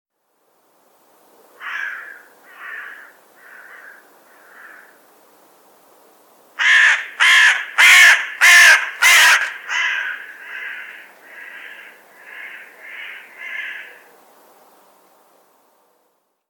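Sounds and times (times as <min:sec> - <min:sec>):
Carrion crow cawing: 0:01.6 - 0:05.0, 0:06.6 - 0:14.1.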